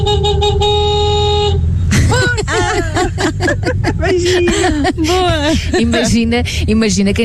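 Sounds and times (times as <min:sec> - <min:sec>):
car horn honking in traffic: 0:00.0 - 0:02.8
low traffic rumble: 0:00.0 - 0:07.2
laughter: 0:01.9 - 0:06.3
speech: 0:04.0 - 0:07.2.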